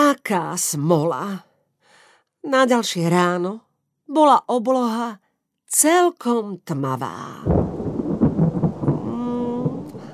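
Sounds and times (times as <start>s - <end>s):
speech: 0.2s - 1.5s, 2.4s - 7.7s
thunder rumbling: 7.4s - 10.1s
rain falling: 7.5s - 10.1s.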